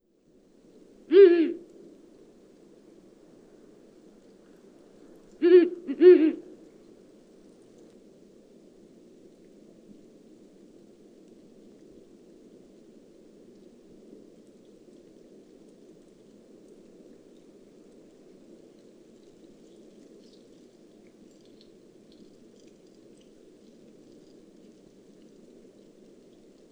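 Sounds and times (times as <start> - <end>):
Ural owl Strix uralensis calling at night: 1.1 - 1.7, 5.4 - 6.6.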